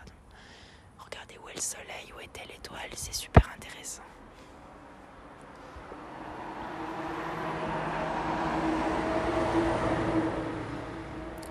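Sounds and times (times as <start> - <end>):
speech: 1.6 - 4.3
large truck driving past with heavy engine rumble and tire noise: 4.5 - 11.4.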